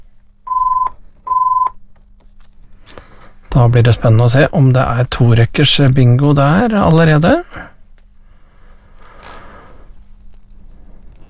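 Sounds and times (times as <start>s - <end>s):
faint low hum: 0.0s - 11.2s
telephone ringing with two electronic tones during a bingo game: 0.5s - 1.8s
speech: 3.6s - 7.5s.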